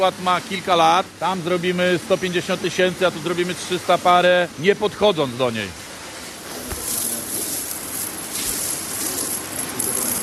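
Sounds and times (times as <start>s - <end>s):
speech: 0.0s - 5.8s
hands shuffling through a heap of freshly struck coins in a huge crate: 6.8s - 10.2s.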